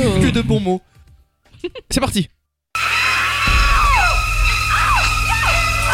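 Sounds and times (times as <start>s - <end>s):
speech: 0.0s - 1.0s, 1.6s - 2.4s
woman's sustained scream from a film's shower scene: 2.8s - 5.9s.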